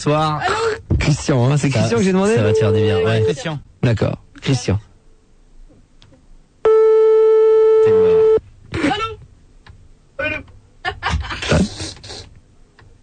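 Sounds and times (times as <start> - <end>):
speech: 0.0 - 4.9
telephone call tone: 2.4 - 3.4, 6.7 - 8.4.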